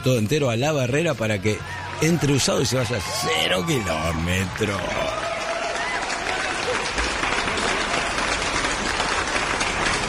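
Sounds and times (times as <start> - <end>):
speech: 0.0 - 5.3
crowd applause: 0.0 - 10.0.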